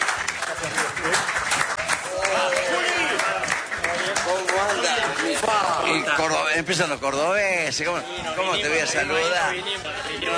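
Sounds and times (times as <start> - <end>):
steady clapping applause: 0.0 - 6.2
speech: 5.4 - 10.3.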